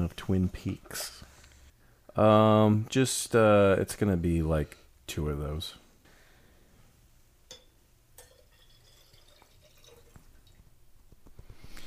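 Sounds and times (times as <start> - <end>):
speech: 0.1 - 1.3, 2.2 - 5.8
cocktail pouring and trickling into glasses: 8.2 - 10.7.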